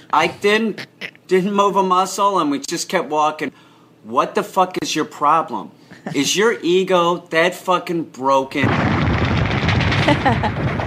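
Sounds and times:
speech: 0.1 - 9.0, 10.1 - 10.7
booming explosion sound effects: 8.6 - 10.8
machine-gun fire sound effects: 8.6 - 10.8.

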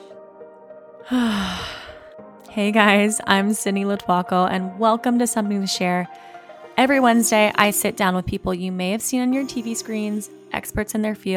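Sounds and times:
deep breath drawn in and let out as a soft sigh: 1.0 - 2.2
speech: 1.1 - 1.8, 2.6 - 11.3.

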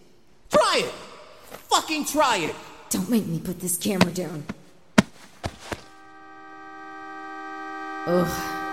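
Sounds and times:
speech: 0.8 - 4.6, 8.0 - 8.5
knocking thumps: 4.0 - 5.9.

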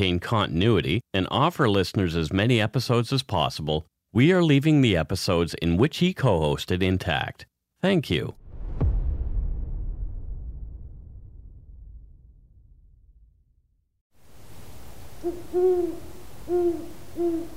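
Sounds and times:
speech: 0.0 - 8.4, 15.2 - 17.5
low rumble: 8.4 - 14.0
soft outdoor hiss: 14.2 - 17.5
owl hooting: 14.8 - 17.5.

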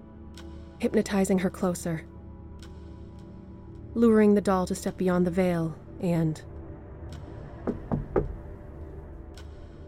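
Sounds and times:
speech: 0.8 - 2.1, 4.0 - 6.5
quick knocks on metal: 7.6 - 8.4.

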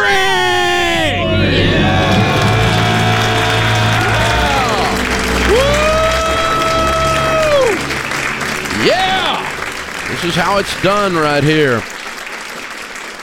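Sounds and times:
small family group screaming in celebration of paying off their debt: 0.0 - 10.6
cheering: 0.0 - 13.2
clapping: 2.1 - 13.2
speech: 10.3 - 12.0.

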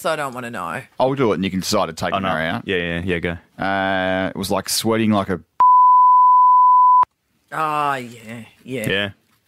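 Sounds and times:
speech: 0.0 - 5.5, 7.5 - 9.2
high-pitched censor bleep over a rude word: 5.6 - 7.1.

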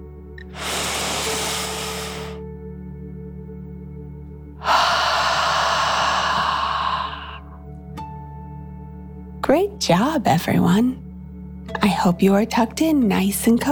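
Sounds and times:
deep slow breath in and out in a bedtime relaxation exercise: 0.4 - 2.4, 4.6 - 7.6
speech: 9.5 - 11.0, 11.8 - 13.7.

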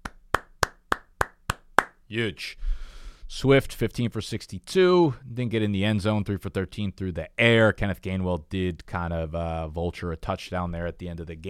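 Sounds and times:
hand clapping: 0.0 - 2.0
speech: 2.1 - 11.4.

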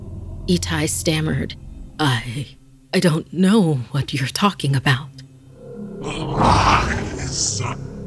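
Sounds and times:
speech: 0.5 - 5.2, 6.0 - 7.9
deep guttural monster roaring: 6.0 - 8.0.

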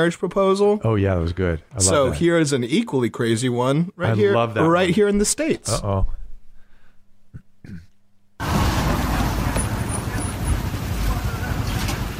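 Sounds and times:
speech: 0.0 - 6.2
car rolling up with vehicle and road noise: 8.4 - 12.1.

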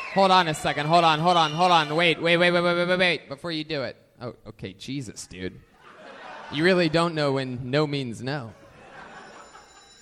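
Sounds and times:
speech: 0.1 - 5.7, 6.5 - 8.6
laughter: 5.8 - 7.2, 8.5 - 10.0
old-school telephone bell ringing in a metallic trill: 8.8 - 10.0.

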